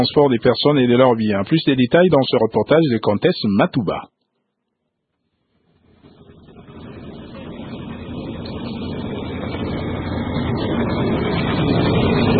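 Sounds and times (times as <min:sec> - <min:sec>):
speech: 0:00.0 - 0:04.1
heavy locomotive rumbling into motion at a train station: 0:05.8 - 0:12.3.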